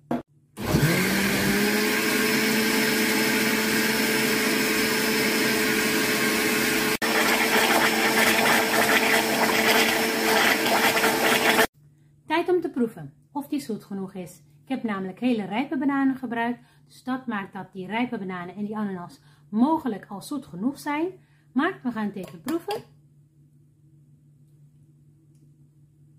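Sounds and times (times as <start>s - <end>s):
blender mixing a smoothie: 0.1s - 11.7s
speech: 13.0s - 22.9s.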